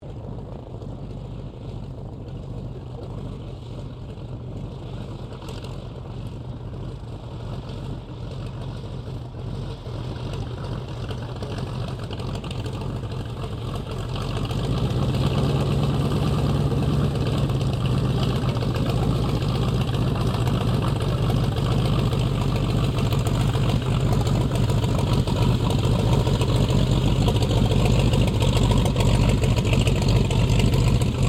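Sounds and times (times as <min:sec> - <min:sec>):
1916 Sopwith Pup replica airplane engine shutdown after taxi: 0:10.2 - 0:31.2.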